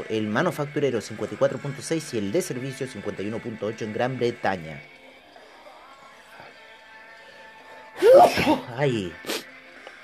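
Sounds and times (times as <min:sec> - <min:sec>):
speech: 0:00.1 - 0:04.9, 0:08.2 - 0:09.4
person sneezing from an allergy fit: 0:08.0 - 0:09.5.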